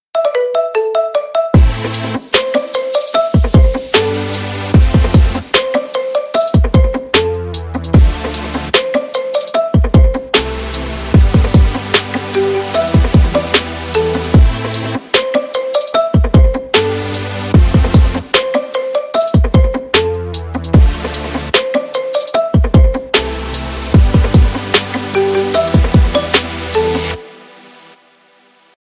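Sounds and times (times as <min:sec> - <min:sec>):
fantasy marimba music: 0:00.2 - 0:07.4, 0:08.7 - 0:10.4, 0:11.2 - 0:17.0, 0:17.7 - 0:20.4, 0:21.5 - 0:23.3, 0:23.9 - 0:27.2.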